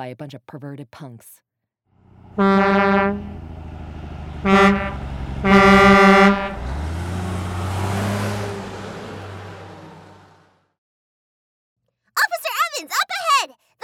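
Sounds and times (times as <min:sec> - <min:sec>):
speech: 0:00.0 - 0:01.5, 0:02.4 - 0:03.6, 0:04.4 - 0:06.4
oversized tanker truck horn blasts: 0:02.0 - 0:08.8
oversized tanker truck engine rumble: 0:02.0 - 0:10.6.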